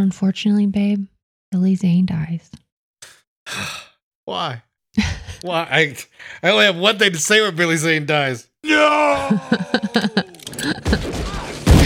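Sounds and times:
speech: 0.0 - 10.2
laughter: 8.8 - 11.2
guns fired into the air: 10.6 - 11.8.

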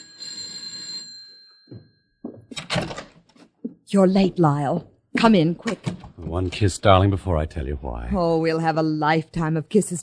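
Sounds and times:
electric doorbell ringing: 0.0 - 2.5
speech: 3.9 - 10.0.

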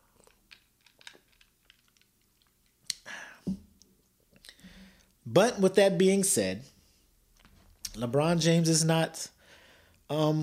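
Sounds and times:
mouth clicks: 2.8 - 3.2
speech: 5.3 - 6.7, 8.0 - 9.4, 10.1 - 10.4.

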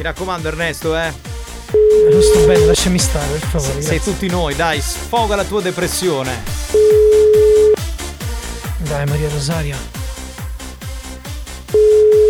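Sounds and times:
speech: 0.0 - 7.3, 8.8 - 10.0
music: 0.0 - 12.2
telephone ringback tone of an unanswered call: 1.8 - 2.8, 6.7 - 7.8, 11.8 - 12.2.

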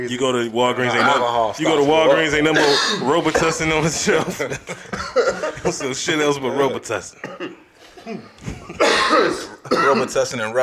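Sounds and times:
speech: 0.0 - 8.3, 9.1 - 10.6
man coughing over a microphone: 2.0 - 3.6, 4.7 - 5.9, 7.2 - 10.6
laughter: 3.5 - 6.7.

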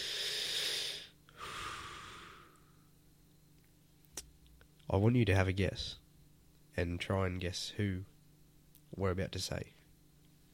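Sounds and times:
heavy breaths: 0.0 - 2.8
speech: 4.9 - 6.0, 6.8 - 8.1, 8.9 - 9.8.

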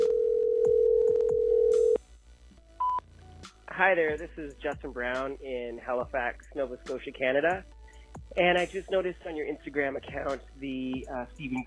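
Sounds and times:
telephone voicemail line dial-like tone: 0.0 - 2.0
speech: 3.8 - 7.8, 8.4 - 11.6.

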